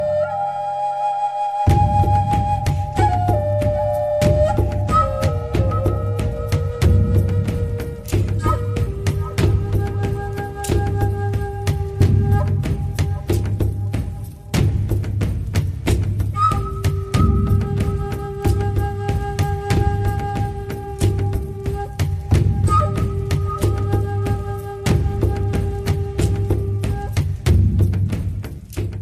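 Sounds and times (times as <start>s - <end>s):
native drums: 0.0s - 29.0s
native flutes: 0.0s - 29.0s.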